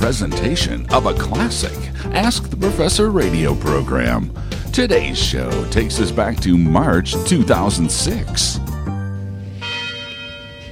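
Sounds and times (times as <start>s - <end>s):
speech: 0.0s - 8.8s
university tower chimes ringing: 9.5s - 10.7s.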